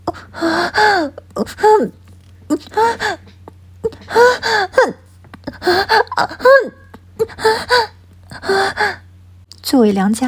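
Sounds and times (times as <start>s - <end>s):
woman panting and moaning softly on a bed: 0.0s - 9.1s
faint low hum: 0.0s - 10.2s.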